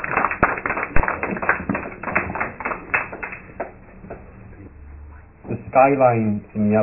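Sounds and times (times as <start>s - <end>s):
audience applause: 0.0s - 4.2s
speech: 5.8s - 6.8s.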